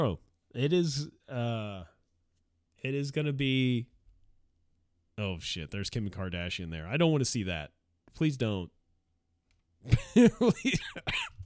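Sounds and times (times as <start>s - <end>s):
speech: 0.0s - 1.9s, 2.8s - 3.9s, 5.2s - 8.8s, 9.8s - 11.3s
harsh coughing: 10.2s - 11.4s.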